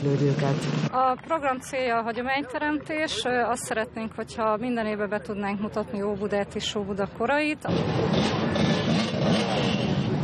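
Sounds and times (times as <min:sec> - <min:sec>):
speech: 0:00.0 - 0:09.8
Harley-Davidson motorcycles riding past in a long procession along the Lake Balaton shore: 0:07.7 - 0:10.2.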